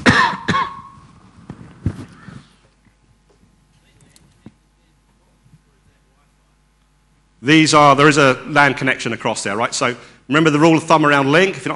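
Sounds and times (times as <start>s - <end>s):
person coughing: 0.0s - 1.0s
throat clearing: 0.0s - 1.0s
speech: 7.4s - 11.7s.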